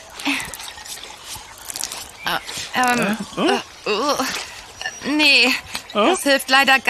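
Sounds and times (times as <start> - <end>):
water poured from a bottle over hands: 0.0 - 3.4
speech: 2.3 - 6.8.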